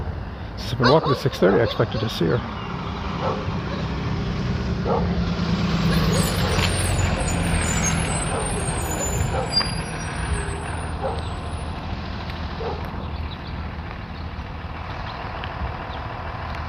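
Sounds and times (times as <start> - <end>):
bus engine idling: 0.0 - 5.4, 6.0 - 16.6
speech: 0.6 - 2.6, 3.2 - 3.8, 4.8 - 6.4.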